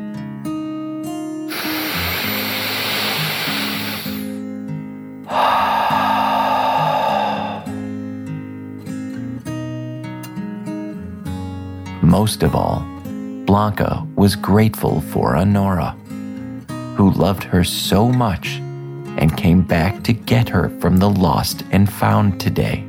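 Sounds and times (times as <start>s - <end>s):
deep breath in and out: 1.5s - 4.4s, 5.2s - 8.0s
speech: 12.2s - 12.9s, 13.5s - 16.0s, 17.0s - 18.6s, 19.2s - 22.8s.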